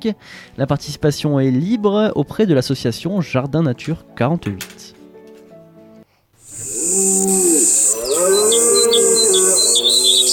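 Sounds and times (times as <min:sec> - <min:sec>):
speech: 0:00.0 - 0:05.0, 0:07.0 - 0:07.4
birds chirping: 0:06.5 - 0:10.3
loud drawn-out lowing call: 0:06.5 - 0:10.3.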